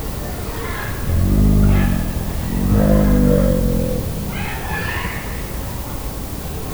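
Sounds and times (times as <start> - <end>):
animal sounds at a zoo: 0.9 - 5.5.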